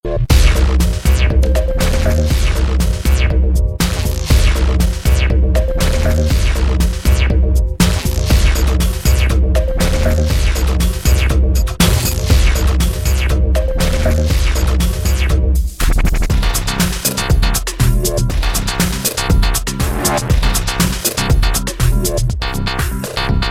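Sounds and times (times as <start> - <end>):
robotic techno sound: 0.1 - 23.4.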